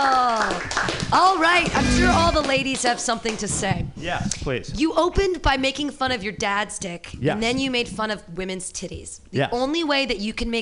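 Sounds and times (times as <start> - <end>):
audience clapping for a comedian: 0.0 - 1.8
speech: 1.1 - 10.6.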